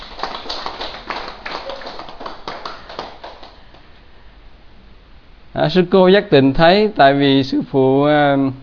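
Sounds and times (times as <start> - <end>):
audience applause at a Buddhist temple: 0.0 - 3.7
speech: 5.6 - 8.6.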